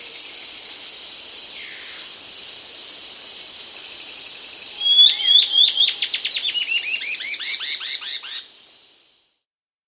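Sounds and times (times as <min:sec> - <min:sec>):
White-cheeked antbird song of descending slurred notes in South America: 0:04.6 - 0:08.4.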